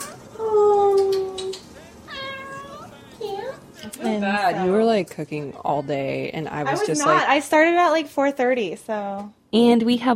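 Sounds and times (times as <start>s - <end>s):
family cat meowing: 2.1s - 3.0s
speech: 4.0s - 10.1s.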